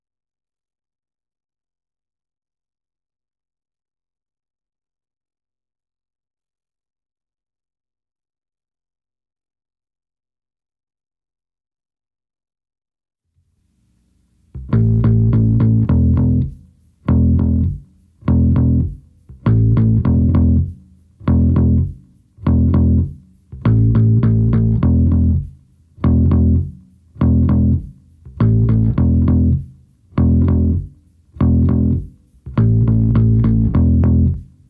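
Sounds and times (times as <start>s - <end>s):
rhythm: 14.4s - 34.6s.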